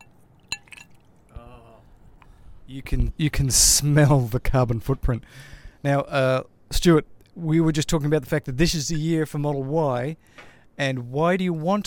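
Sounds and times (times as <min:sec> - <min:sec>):
glass clinking: 0:00.0 - 0:01.1
speech: 0:02.7 - 0:11.8.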